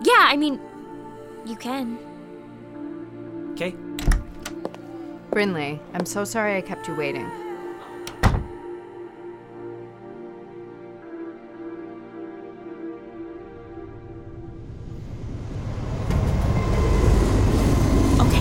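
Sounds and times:
speech: 0.2 - 0.7, 1.4 - 2.1, 3.6 - 3.9, 5.3 - 7.4
heavy metallic thunk of rail cars: 8.1 - 8.6
moving train rumbling: 14.8 - 18.3.

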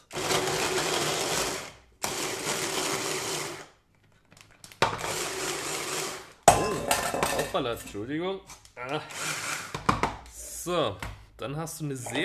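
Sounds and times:
multi-chopper food processor whirring, chopping coarse pieces of broccoli: 0.0 - 3.8, 4.8 - 6.4, 9.1 - 10.0
speech: 7.5 - 9.4, 10.6 - 12.2.

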